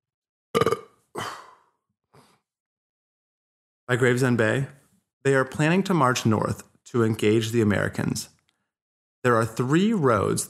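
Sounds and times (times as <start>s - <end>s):
person burping: 0.6s - 1.6s
speech: 3.9s - 8.4s, 9.2s - 10.4s.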